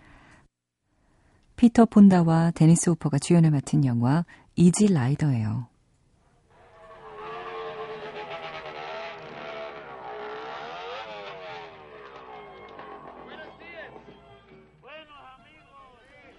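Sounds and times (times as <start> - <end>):
speech: 1.6 - 5.7
motorcycle engine revving while riding: 6.5 - 14.8.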